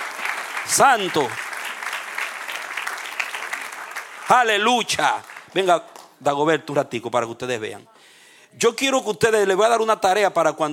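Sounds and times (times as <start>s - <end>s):
congregation applauding at a church worship service: 0.0s - 6.2s
speech: 0.7s - 1.4s, 4.3s - 7.9s, 8.5s - 10.7s.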